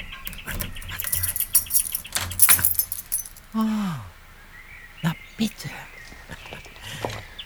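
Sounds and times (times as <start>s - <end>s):
keys jangling and scraping in a front door lock: 0.0s - 3.7s
speech: 3.6s - 4.1s, 5.0s - 5.9s.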